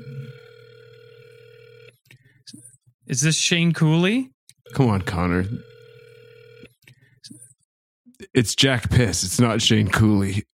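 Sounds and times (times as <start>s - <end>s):
telephone ringing with incoming call: 0.0s - 1.9s, 4.7s - 6.7s
speech: 3.1s - 5.7s, 8.4s - 10.5s.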